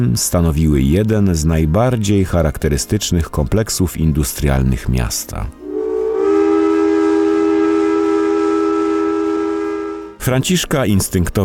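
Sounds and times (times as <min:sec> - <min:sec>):
speech: 0:00.0 - 0:05.6, 0:10.2 - 0:11.4
steam locomotive whistle at a railway station: 0:05.6 - 0:10.2.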